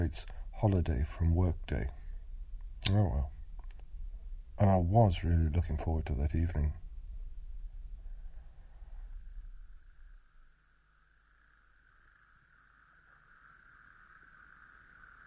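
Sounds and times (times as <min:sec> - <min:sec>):
speech: 0:00.1 - 0:02.0, 0:02.8 - 0:03.4, 0:04.6 - 0:06.8
chorus of toads calling from a pond at the edge of a sand dune: 0:09.0 - 0:15.2.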